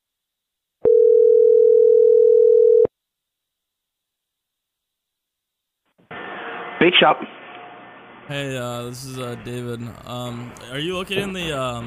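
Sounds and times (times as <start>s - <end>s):
single steady electronic phone ring tone: 0.8s - 2.9s
speech: 6.9s - 7.4s, 8.3s - 11.8s.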